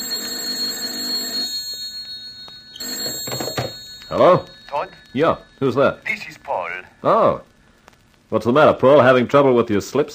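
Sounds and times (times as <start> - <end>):
telephone ringing with a shrill buzzing double tone: 0.0 - 6.9
speech: 4.1 - 7.5, 8.3 - 10.1.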